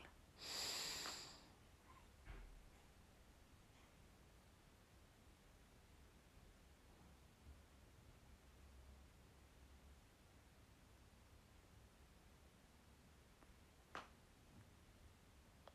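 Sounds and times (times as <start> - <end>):
low hiss: 0.0 - 15.7
long deep breath during a guided breathing exercise: 0.4 - 1.6.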